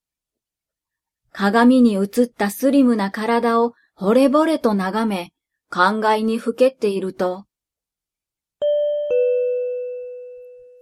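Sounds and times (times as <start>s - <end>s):
speech: 1.4s - 7.5s
two-note ding-dong apartment door chime: 8.6s - 10.8s.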